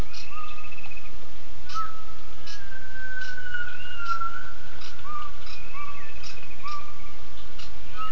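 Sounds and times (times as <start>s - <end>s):
steady background noise: 0.0s - 8.1s
gibbon giving clear whistled notes: 1.7s - 7.0s.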